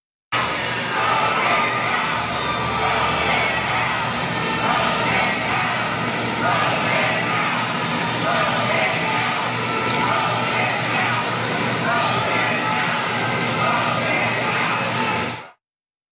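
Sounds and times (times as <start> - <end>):
large crowd of protesters shouting and chanting: 0.3 - 15.6.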